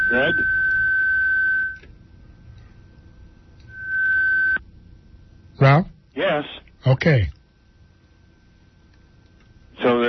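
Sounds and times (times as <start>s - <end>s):
long steady electronic tones over a phone line: 0.0s - 1.8s, 3.7s - 4.6s
speech: 0.1s - 0.6s, 5.6s - 7.4s.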